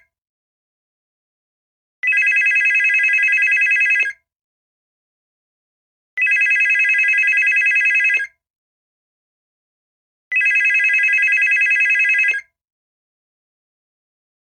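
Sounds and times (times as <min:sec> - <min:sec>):
cordless telephone ringing: 0:02.1 - 0:04.1, 0:06.2 - 0:08.2, 0:10.3 - 0:12.4.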